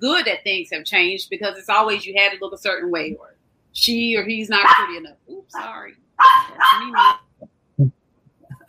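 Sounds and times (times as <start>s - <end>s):
speech: 0.0s - 8.0s
female dog barking: 4.6s - 5.0s, 6.2s - 7.3s.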